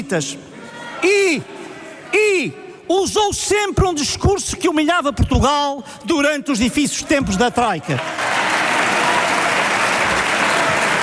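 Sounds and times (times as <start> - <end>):
speech: 0.0 - 8.3
sustained applause from a chamber full of people: 7.9 - 11.0.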